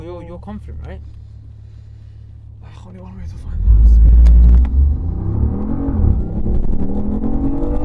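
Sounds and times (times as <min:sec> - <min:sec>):
speech: 0:00.3 - 0:01.2, 0:02.6 - 0:05.1, 0:06.4 - 0:07.3
sports car engine roaring as it launches hard from a standstill in sport mode: 0:00.6 - 0:07.8.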